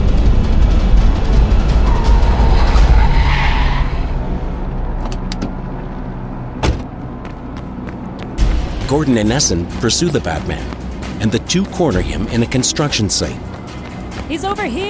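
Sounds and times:
car engine roaring: 0.0 - 8.7
car braking hard and swerving with tires screeching in a skid: 1.8 - 4.4
thud: 6.6 - 6.9
speech: 8.9 - 13.6, 14.3 - 14.8.

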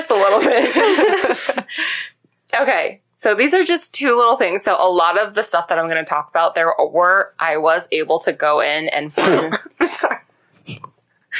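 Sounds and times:
laughter: 0.0 - 2.0
speech: 0.1 - 10.1
person coughing to clear something stuck in the throat: 9.2 - 11.3.

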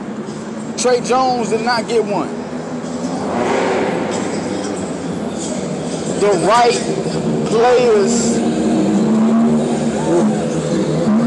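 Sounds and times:
three-wheeled car engines revving: 0.0 - 11.2
tire and road rumble: 0.0 - 11.2
speech: 0.8 - 2.4, 6.2 - 8.6, 10.1 - 10.4.

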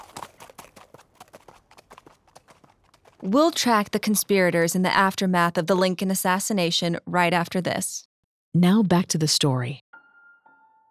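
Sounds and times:
hooves of a horse being ridden away clip-clopping: 0.0 - 4.3
speech: 3.2 - 9.8.

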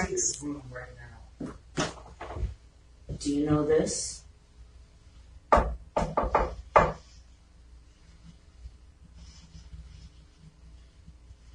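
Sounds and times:
speech: 0.5 - 1.3, 3.2 - 4.2
knocking on a wooden surface: 5.5 - 7.0.

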